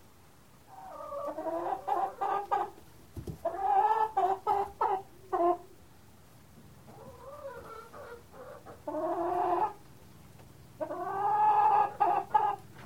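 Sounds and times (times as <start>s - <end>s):
chicken clucking: 0.7s - 5.8s, 6.9s - 9.9s, 10.8s - 12.8s.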